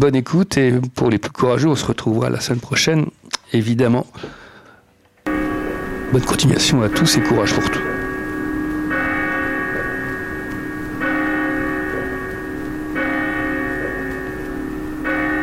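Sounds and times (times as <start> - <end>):
speech: 0.0 - 4.4, 6.1 - 7.9
church bells tolling in a short introduction: 5.3 - 15.4.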